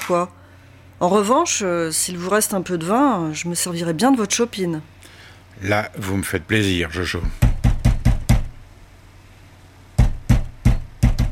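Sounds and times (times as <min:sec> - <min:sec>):
speech: 0:00.1 - 0:00.4, 0:01.0 - 0:07.4
loud heavy pounding on a door: 0:07.3 - 0:08.6, 0:10.0 - 0:11.3.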